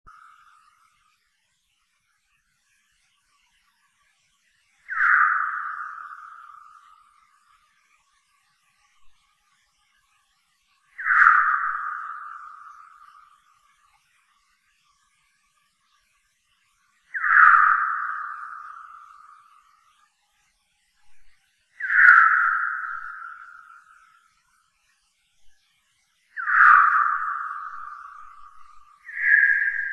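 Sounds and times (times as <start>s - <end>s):
Tadarina australis calls: 4.9s - 6.7s, 11.0s - 12.8s, 17.2s - 19.0s, 21.8s - 23.8s, 26.4s - 29.9s.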